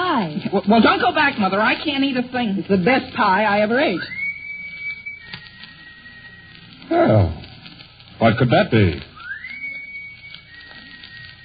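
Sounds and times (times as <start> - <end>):
speech: 0.5 - 4.2, 6.9 - 7.4, 8.2 - 9.1
sustained high-pitched whistle: 3.6 - 7.9, 9.1 - 11.4.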